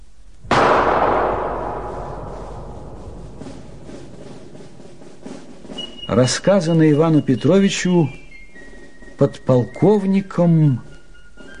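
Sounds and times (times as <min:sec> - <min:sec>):
gunshot with tail: 0:00.5 - 0:05.4
speech: 0:06.1 - 0:08.2, 0:09.2 - 0:10.9.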